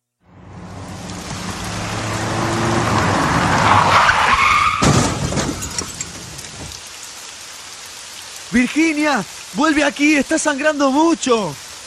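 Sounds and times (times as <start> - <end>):
vehicle braking hard with tyres sliding: 0.2 - 6.8
vehicle crashing into a collision: 0.5 - 6.3
speech: 8.6 - 11.6.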